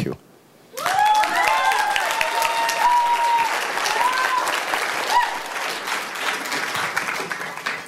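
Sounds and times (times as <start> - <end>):
cheers and whoops: 0.7 - 5.7
large audience applauding a speaker at the end of a talk: 0.8 - 7.8.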